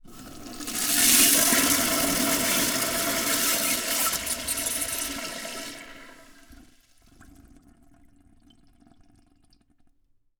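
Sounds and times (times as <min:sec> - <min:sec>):
downstairs toilet: 0:00.0 - 0:10.0.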